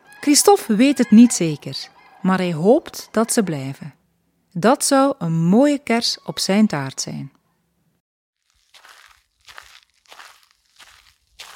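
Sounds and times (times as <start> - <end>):
speech: 0.2 - 4.0, 4.6 - 7.4
footsteps walking on a parking lot: 8.4 - 11.5.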